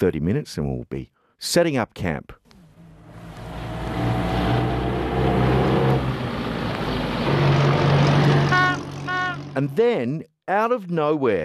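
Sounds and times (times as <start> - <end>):
speech: 0.0 - 2.4, 9.6 - 11.4
old high-mileage car engine droning and breaking down in the bush: 2.5 - 9.7.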